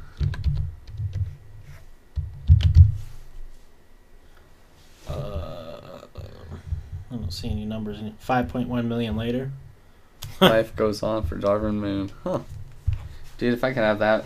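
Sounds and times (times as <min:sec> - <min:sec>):
typing on a computer keyboard: 0:00.2 - 0:01.3, 0:02.2 - 0:02.9
speech: 0:07.3 - 0:09.6, 0:10.4 - 0:12.5, 0:13.4 - 0:14.2.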